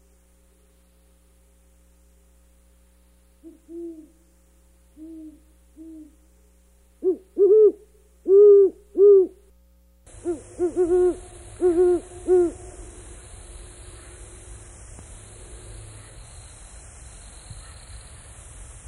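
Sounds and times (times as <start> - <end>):
steady background hiss: 0.0 - 18.8
great horned owl hooting: 3.4 - 4.3, 4.9 - 9.5, 10.1 - 14.8.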